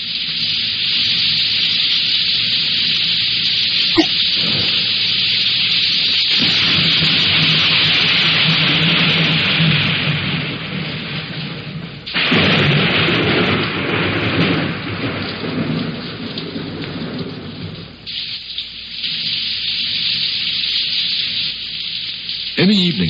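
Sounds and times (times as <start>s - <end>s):
steady heavy rain: 0.0s - 23.0s
deep thunder rolling and rumbling: 6.4s - 18.1s.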